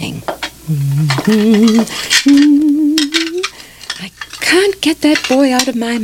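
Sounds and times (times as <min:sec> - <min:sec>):
speech: 0:00.2 - 0:03.0, 0:04.8 - 0:06.0
dishes and cutlery clinking and clattering in a sink: 0:00.3 - 0:06.0
person humming a wandering tune: 0:00.6 - 0:03.5.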